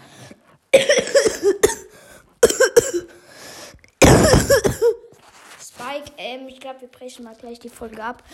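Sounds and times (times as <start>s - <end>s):
wheezy rasping breaths: 0.0s - 0.8s, 1.8s - 2.4s, 3.0s - 4.0s
harsh hacking coughs: 0.7s - 3.2s, 4.0s - 5.1s
speech: 6.7s - 8.3s.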